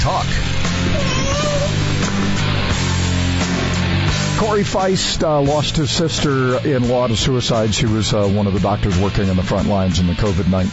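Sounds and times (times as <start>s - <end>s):
loud steady low musical bed: 0.0s - 10.7s
cat meowing: 0.8s - 2.0s
speech: 4.5s - 10.7s.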